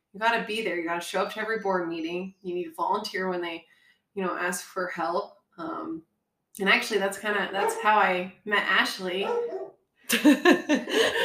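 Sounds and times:
speech: 0.1s - 11.2s
dog barking: 7.6s - 8.0s, 9.2s - 9.7s
laughter: 10.1s - 11.2s.

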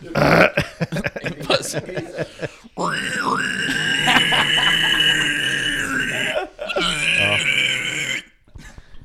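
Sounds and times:
speech: 0.0s - 0.5s
people laughing: 0.0s - 2.7s, 3.7s - 7.4s
people chattering: 0.0s - 7.6s
voice imitating low guttural pig-squeal vocals of an old band: 2.8s - 8.4s.

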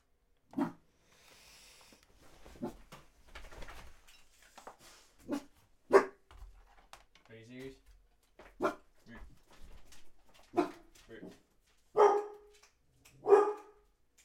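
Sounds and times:
dog barking: 0.5s - 0.8s, 5.2s - 6.2s, 8.6s - 8.9s, 10.5s - 11.3s, 11.9s - 12.6s, 13.2s - 13.8s.

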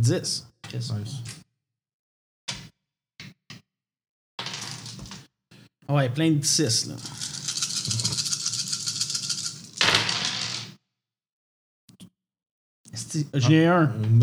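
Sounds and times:
speech: 0.0s - 1.4s, 5.9s - 7.3s, 13.2s - 14.2s
dice rattling in a cup: 4.4s - 5.2s, 7.0s - 10.7s.

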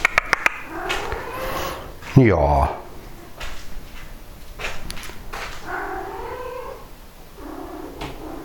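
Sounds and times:
cat meowing with drawn-out tonal cries: 0.7s - 2.8s, 5.6s - 8.4s
light rustling noise: 0.7s - 6.4s
speech: 2.2s - 2.8s.

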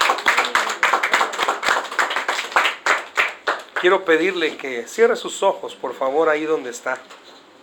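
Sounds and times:
church audience clapping rhythmically at an evening service: 0.0s - 4.4s
speech: 3.8s - 7.2s.

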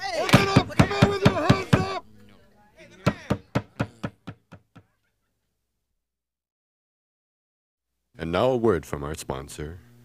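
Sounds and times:
heavy pounding on a door: 0.3s - 2.0s, 3.1s - 4.8s
speech: 8.2s - 9.9s.

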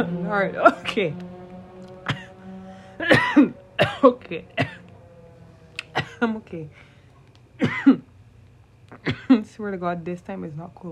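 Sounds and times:
speech: 0.0s - 1.3s, 3.0s - 4.6s, 6.2s - 6.9s, 7.6s - 8.0s, 9.0s - 10.9s
person coughing: 2.0s - 2.4s, 3.0s - 4.8s, 5.9s - 6.3s, 7.6s - 8.1s, 8.9s - 9.4s.

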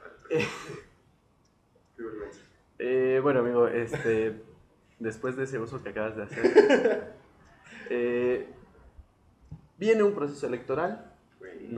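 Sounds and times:
speech: 0.3s - 0.8s, 3.2s - 8.6s, 9.8s - 11.7s
person coughing into the microphone: 0.3s - 0.9s
laughter: 3.8s - 4.4s, 6.3s - 8.1s.

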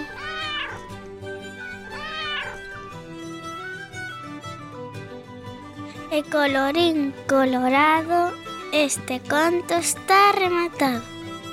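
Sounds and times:
cat meowing: 0.0s - 2.9s
speech: 6.1s - 11.1s.

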